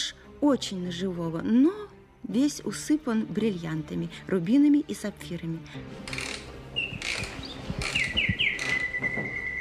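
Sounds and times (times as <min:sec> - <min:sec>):
speech: 0:00.4 - 0:06.2
nightingale singing in whistled phrases and trills: 0:06.7 - 0:09.5.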